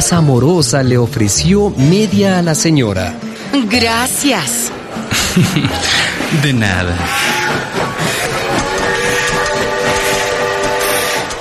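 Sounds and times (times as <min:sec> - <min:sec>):
speech: 0:00.0 - 0:07.6
laughter: 0:05.0 - 0:06.8
train arriving rumble: 0:05.8 - 0:11.4
train horn or whistle: 0:07.0 - 0:11.4.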